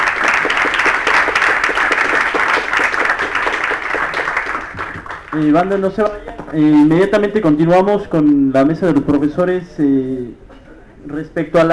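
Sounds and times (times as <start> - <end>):
audience applause for a teacher at a school welcome event: 0.0 - 5.6
speech: 5.4 - 10.4, 11.0 - 11.7.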